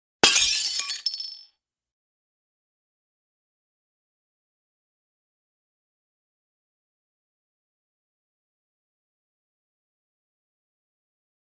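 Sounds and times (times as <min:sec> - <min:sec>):
plate breaking: 0:00.2 - 0:01.4.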